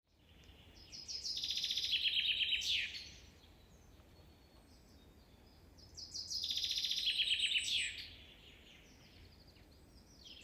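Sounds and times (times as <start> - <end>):
common chaffinch song with rapid falling trill and sharp flourish: 0.1 - 10.4.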